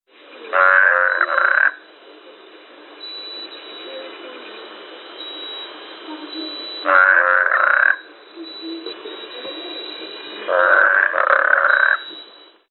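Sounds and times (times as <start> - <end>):
steady background hiss: 0.1 - 12.6
toad calling with rattling croaking trills: 0.5 - 1.9, 6.0 - 12.2.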